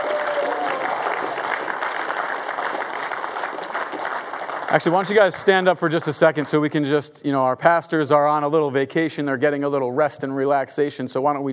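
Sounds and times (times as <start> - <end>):
large crowd applauding: 0.0 - 6.8
speech: 4.7 - 11.5.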